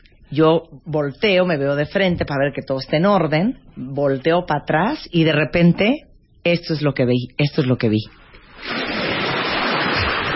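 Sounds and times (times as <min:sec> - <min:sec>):
speech: 0:00.3 - 0:09.0
ocean waves: 0:08.4 - 0:10.3.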